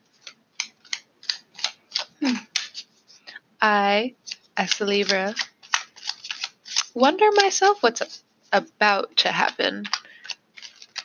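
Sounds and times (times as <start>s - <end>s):
deck of tarot cards being shuffled: 0.1s - 3.3s, 4.2s - 8.6s, 9.2s - 11.0s
speech: 3.6s - 5.5s, 7.0s - 10.0s.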